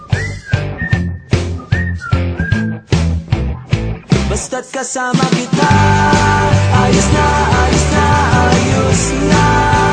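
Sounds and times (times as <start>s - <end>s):
bright whistled melody of short sliding notes: 0.0s - 2.9s
upbeat backing track with drums and bass: 0.0s - 9.9s
speech: 4.5s - 7.5s.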